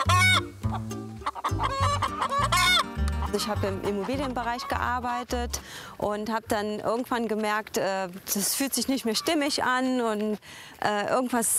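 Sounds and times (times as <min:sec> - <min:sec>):
chickens clucking: 0:00.0 - 0:05.3, 0:08.8 - 0:09.7
speech: 0:03.3 - 0:11.5.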